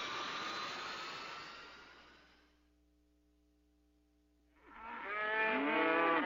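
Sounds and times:
low steady hum: 0.0s - 4.6s
cow mooing: 4.6s - 6.2s.

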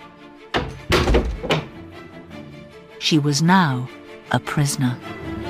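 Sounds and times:
heavy wooden door swinging shut: 0.6s - 1.9s
speech: 3.0s - 5.2s.

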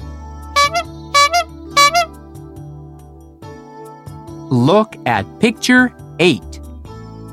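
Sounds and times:
ice cream truck jingle with two-note chime phrase: 0.6s - 2.1s
speech: 4.5s - 6.5s.

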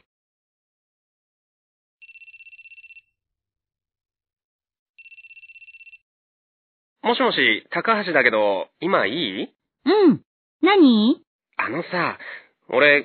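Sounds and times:
telephone ringing with trilling electronic bursts: 2.0s - 3.2s, 5.0s - 6.1s
speech: 7.0s - 13.0s.

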